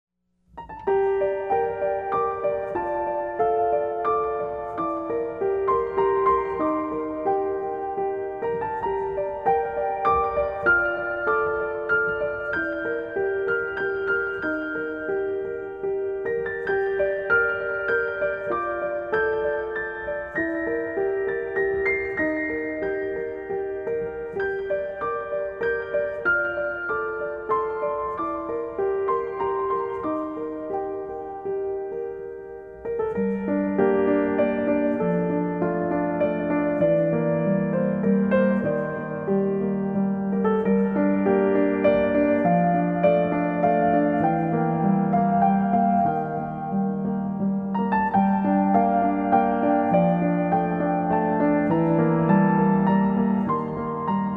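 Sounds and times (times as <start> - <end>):
piano: 0.3 - 54.3.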